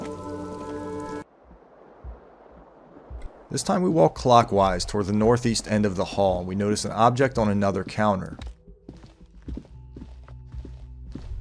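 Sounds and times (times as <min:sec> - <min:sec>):
steady rain falling outside: 0:00.0 - 0:07.5
speech: 0:03.5 - 0:08.6.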